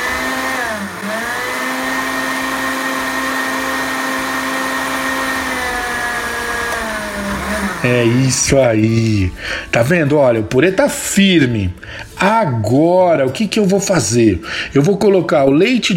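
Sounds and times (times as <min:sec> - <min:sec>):
blender pureeing cooked turnip: 0:00.0 - 0:08.8
speech: 0:07.8 - 0:15.9.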